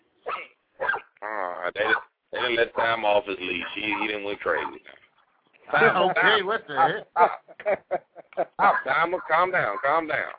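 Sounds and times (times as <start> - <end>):
dog barking and yelping: 0.2 - 1.1, 1.8 - 4.8, 8.6 - 9.8
speech: 1.7 - 5.0, 5.7 - 10.3
laughter: 5.7 - 10.3.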